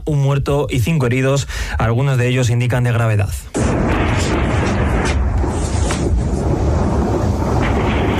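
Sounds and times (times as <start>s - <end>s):
speech: 0.0s - 4.4s
dense constant roar of loud outdoor noise at a night rave festival: 3.6s - 8.1s
sharp gunshots during a shooting at a night rave festival in northern Switzerland: 3.6s - 8.1s.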